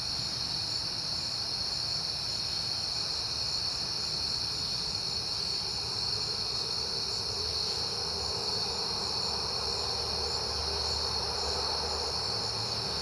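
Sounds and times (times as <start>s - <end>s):
crickets trilling in a dense chorus at night in September: 0.0s - 13.0s
faint low rumble of passing cars: 4.9s - 13.0s.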